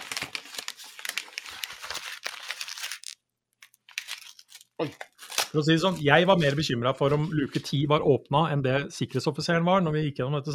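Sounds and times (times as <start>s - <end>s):
envelope paper crinkling and tearing as an envelope is opened: 0.0s - 7.8s
speech: 4.8s - 10.5s.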